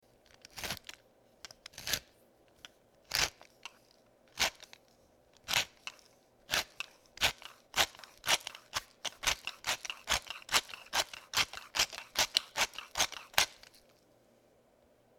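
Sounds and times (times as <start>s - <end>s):
pepper grinder: 0.3s - 2.1s, 3.1s - 4.8s, 5.4s - 13.9s.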